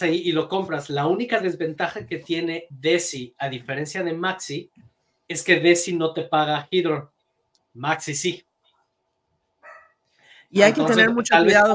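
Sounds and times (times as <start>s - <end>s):
speech: 0.0s - 7.2s, 7.8s - 8.5s, 10.5s - 11.7s
dogs barking: 9.6s - 10.0s.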